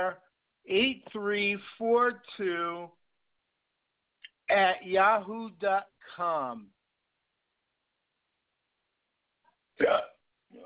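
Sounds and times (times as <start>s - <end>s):
speech: 0.0s - 3.0s, 4.5s - 6.8s, 9.8s - 10.6s
person on a phone call hiccuping: 9.8s - 10.6s.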